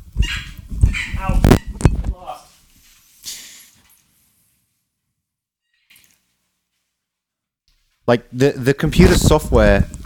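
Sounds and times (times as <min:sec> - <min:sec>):
dogs barking: 0:00.2 - 0:01.5
speech: 0:08.1 - 0:10.0.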